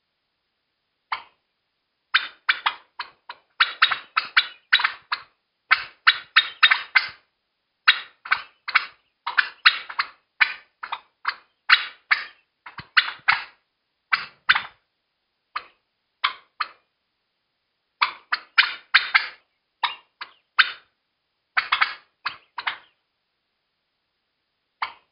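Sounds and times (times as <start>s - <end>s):
turkey panic calling: 1.1s - 1.4s, 2.1s - 7.2s, 7.8s - 14.8s, 18.0s - 20.9s, 21.6s - 23.0s, 24.8s - 25.1s.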